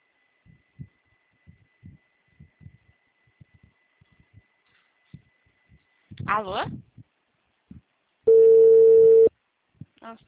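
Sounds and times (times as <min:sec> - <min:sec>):
speech: 0:06.2 - 0:06.9, 0:10.1 - 0:10.2
telephone ringing tone on the line: 0:08.3 - 0:09.3.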